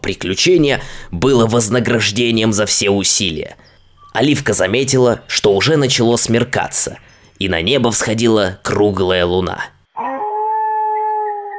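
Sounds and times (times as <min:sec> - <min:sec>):
speech: 0:00.0 - 0:10.1
dogs howling like wolves: 0:10.0 - 0:11.5.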